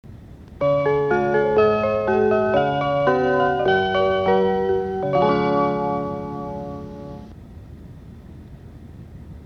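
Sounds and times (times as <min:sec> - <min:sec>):
Joetsu Shinkansen E4 train chime: 0:00.6 - 0:07.3.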